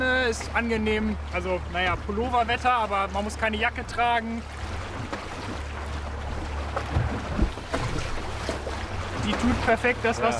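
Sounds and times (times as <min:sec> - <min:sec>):
speech: 0:00.0 - 0:05.2, 0:09.3 - 0:10.3
low rumble of wind and hull noise on a sailboat: 0:00.0 - 0:10.3
soft splashes against a sailboat: 0:00.0 - 0:10.3
knocks against a sailboat: 0:04.8 - 0:09.8.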